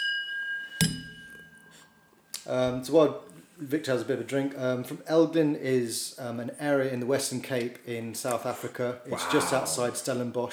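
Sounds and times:
wine glasses clinking in a toast: 0:00.0 - 0:01.9
speech: 0:02.4 - 0:10.5.

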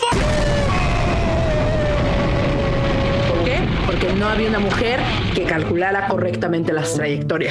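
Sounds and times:
explosion sound effect with dense sustained roaring rumble: 0:00.1 - 0:06.1
speech: 0:04.2 - 0:07.4.

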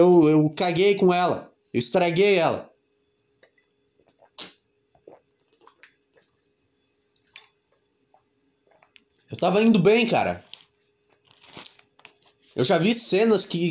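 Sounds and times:
speech: 0:00.0 - 0:02.7, 0:09.3 - 0:10.5, 0:12.6 - 0:13.6
soft swallowing: 0:03.5 - 0:06.4, 0:07.2 - 0:09.4
person taking a quiet sip of water: 0:04.0 - 0:06.4, 0:07.2 - 0:09.4
slurp: 0:04.1 - 0:06.3.

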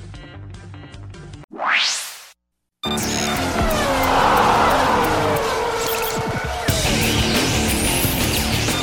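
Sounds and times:
Formula 1 race car engines roaring: 0:02.9 - 0:08.8
race car tire squeal: 0:02.9 - 0:08.8.

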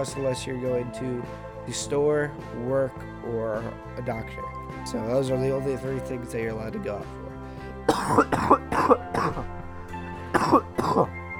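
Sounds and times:
speech: 0:00.0 - 0:07.2, 0:08.1 - 0:09.5
person coughing harshly: 0:07.8 - 0:09.5, 0:10.3 - 0:11.1.

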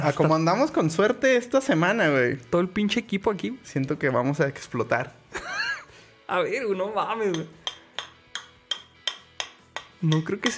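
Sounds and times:
speech: 0:00.0 - 0:05.6, 0:06.3 - 0:07.6, 0:10.0 - 0:10.5
laughter: 0:05.3 - 0:05.9
beer bottle knocking against the cap of another beer bottle to open it: 0:07.3 - 0:10.5.

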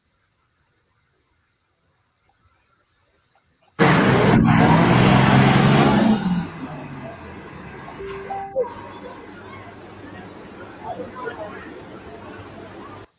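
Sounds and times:
pulling-tractor engine roaring at a tractor pull in Shipshawana: 0:03.8 - 0:13.1
crowd chattering: 0:05.4 - 0:13.1.

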